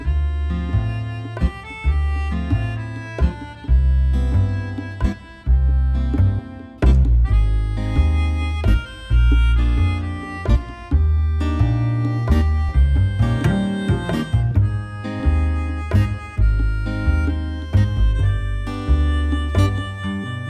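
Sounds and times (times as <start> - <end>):
background music loop: 0.0 - 20.4.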